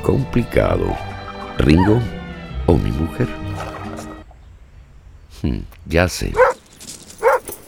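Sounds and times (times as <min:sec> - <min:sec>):
speech: 0:00.1 - 0:03.7, 0:05.4 - 0:06.5
dog barking: 0:06.4 - 0:06.6, 0:07.2 - 0:07.5.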